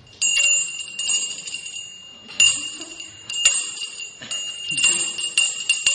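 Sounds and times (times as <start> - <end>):
small ritual hand bell ringing: 0.0 - 5.9.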